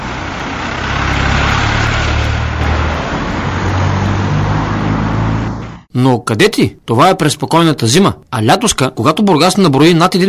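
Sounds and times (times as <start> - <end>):
broadband tire and wind noise: 0.0 - 5.8
heavy trucks rumbling past: 0.0 - 5.9
road traffic roar: 0.0 - 5.9
speech: 6.0 - 10.2.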